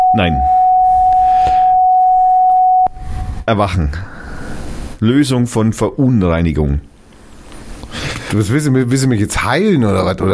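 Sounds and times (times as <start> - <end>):
440 Hz sine wave tuning tone: 0.0 - 2.9
speech: 0.2 - 0.5, 3.5 - 4.1, 5.0 - 6.9, 8.3 - 10.3.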